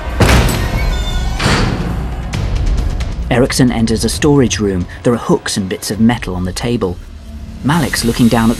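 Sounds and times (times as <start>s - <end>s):
door kicked open with heavy thuds: 0.2s - 2.2s
speech: 3.3s - 8.5s.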